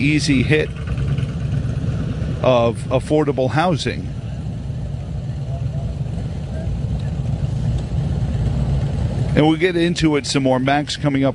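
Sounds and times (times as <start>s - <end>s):
speech: 0.0s - 0.9s, 2.4s - 4.2s, 9.4s - 11.3s
several motorcycles idling: 0.0s - 11.3s
murmur of voices: 3.5s - 8.1s.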